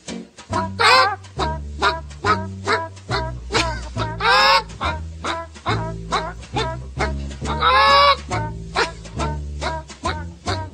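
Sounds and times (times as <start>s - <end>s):
hens squawking: 0.6s - 9.0s
hens clucking: 0.6s - 10.7s
low steady hum: 0.6s - 10.7s.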